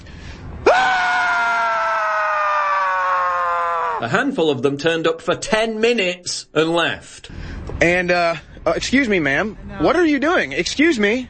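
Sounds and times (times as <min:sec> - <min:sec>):
man screaming at a protest in Austin: 0:00.6 - 0:04.1
speech: 0:04.0 - 0:11.2
murmur of noise: 0:08.4 - 0:11.2.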